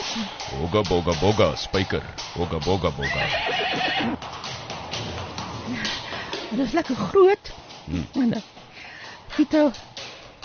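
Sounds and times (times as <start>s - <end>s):
speech: 0.2s - 4.5s, 5.7s - 8.6s, 9.4s - 10.0s
horse whinnying: 3.0s - 4.2s.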